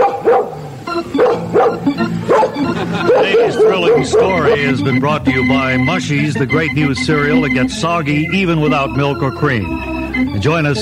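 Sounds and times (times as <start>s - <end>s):
dog barking: 0.0s - 4.8s
laughter: 2.1s - 6.2s
speech: 3.3s - 10.7s.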